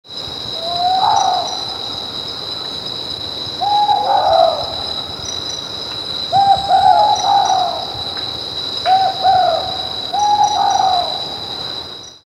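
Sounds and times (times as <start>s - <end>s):
Ninox ochracea call: 0.6s - 1.8s, 3.6s - 4.8s, 6.3s - 8.0s, 8.9s - 11.4s.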